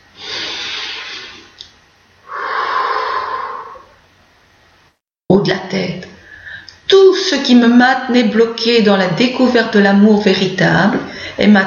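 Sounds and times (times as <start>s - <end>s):
slow deep breath during a guided affirmation exercise: 0.1s - 1.6s, 2.2s - 4.0s
speech: 5.5s - 6.1s, 6.9s - 11.6s.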